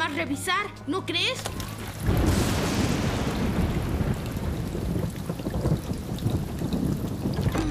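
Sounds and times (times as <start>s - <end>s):
speech: 0.2s - 2.3s
steady dense rain falling outside: 1.6s - 7.6s.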